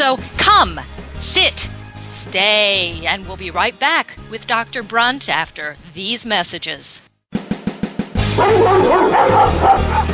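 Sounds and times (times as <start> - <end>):
speech: 0.1 - 7.1, 8.4 - 10.1
several dogs barking and yipping: 8.4 - 10.1.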